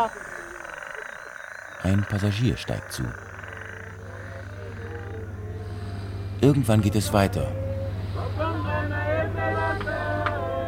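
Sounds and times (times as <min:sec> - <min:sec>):
speech: 0:00.0 - 0:00.3, 0:01.8 - 0:03.3, 0:06.4 - 0:07.6
dense chorus of frogs croaking at night: 0:00.0 - 0:08.4
low hum: 0:02.7 - 0:10.6.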